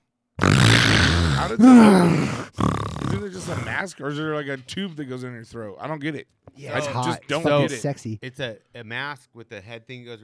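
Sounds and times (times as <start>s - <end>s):
imitated sleep apnea rasping snore-like breath: 0.4s - 3.8s
imitated sleep apnea strained gasping groan: 0.4s - 3.9s
speech: 1.4s - 10.2s.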